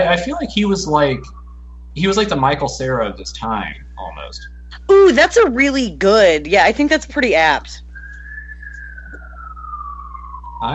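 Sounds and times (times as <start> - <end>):
low hum: 0.0 - 10.7
speech: 0.1 - 1.4, 2.0 - 7.8
emergency siren wailing outside: 0.8 - 2.4, 8.0 - 10.7.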